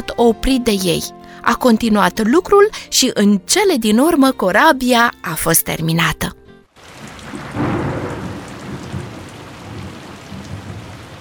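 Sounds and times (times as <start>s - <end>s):
speech: 0.2s - 6.4s
steady rain: 6.7s - 11.1s
thunder rumbling: 7.0s - 11.1s.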